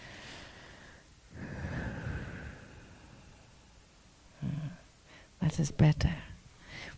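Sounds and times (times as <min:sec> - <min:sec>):
long airy inhale and deeper rushing exhale: 0:00.0 - 0:05.4
speech: 0:05.5 - 0:06.3.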